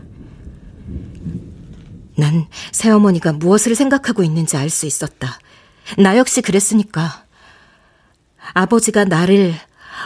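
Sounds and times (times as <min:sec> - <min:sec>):
distant rumbling thunder: 0:00.0 - 0:04.4
speech: 0:02.2 - 0:07.2, 0:08.4 - 0:10.0.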